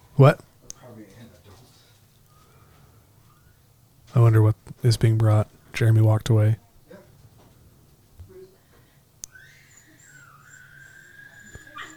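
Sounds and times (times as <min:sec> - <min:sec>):
speech: 0:00.2 - 0:00.5, 0:04.1 - 0:06.6
dog whimpering in a high-pitched wavering whine: 0:09.3 - 0:11.9.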